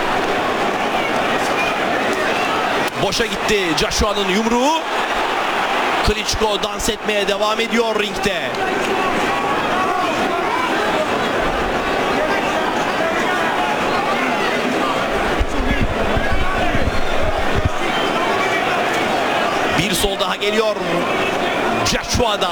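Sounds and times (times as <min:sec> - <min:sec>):
large arena crowd at a boxing match roaring and chanting: 0:00.0 - 0:22.5
speech: 0:03.0 - 0:05.1, 0:06.1 - 0:09.4, 0:19.9 - 0:22.5.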